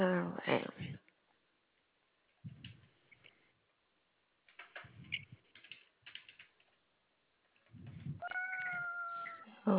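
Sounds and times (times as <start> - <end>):
speech: 0.0 - 0.8
cat's paws stepping on a computer keyboard: 4.5 - 6.8
cat meowing: 8.1 - 9.6.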